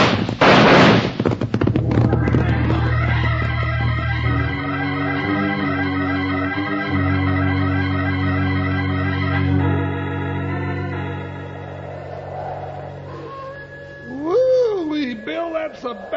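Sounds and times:
signal gunshot: 0.0 - 1.4
music: 1.7 - 16.1.

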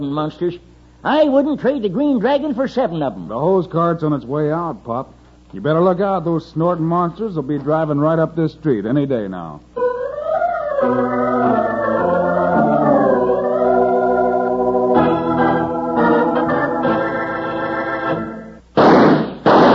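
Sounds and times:
speech: 0.0 - 9.9, 10.8 - 11.2
sustained harmonic musical tones: 9.8 - 18.6
gunshots: 18.8 - 19.7.

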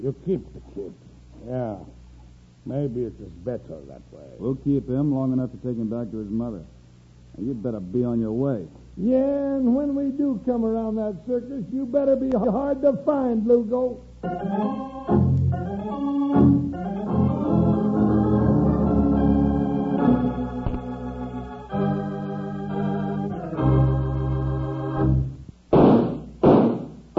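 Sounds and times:
speech: 0.0 - 2.0, 2.6 - 16.5
orchestral music: 14.3 - 25.3
gunshots: 25.7 - 27.1.

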